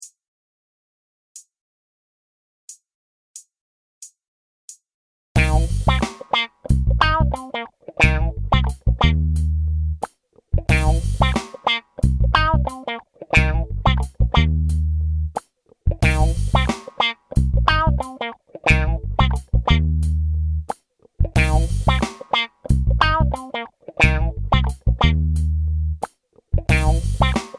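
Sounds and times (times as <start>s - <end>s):
funk improvisation: 5.4s - 27.5s.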